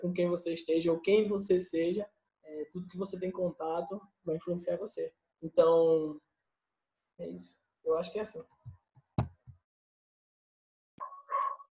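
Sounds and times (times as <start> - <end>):
speech: 0.0 - 6.3, 7.2 - 8.6
dog barking: 11.0 - 11.7.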